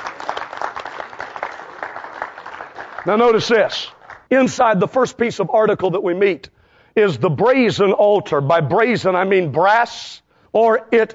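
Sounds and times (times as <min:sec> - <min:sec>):
congregation clapping hands at a church service: 0:00.0 - 0:04.3
speech: 0:03.0 - 0:11.1.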